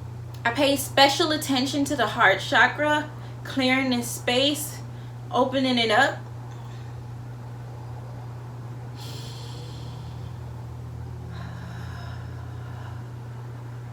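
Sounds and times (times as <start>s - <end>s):
low hum: 0.0s - 13.9s
speech: 0.4s - 6.2s
deep breathing during a sage-smudging ritual: 9.0s - 13.9s.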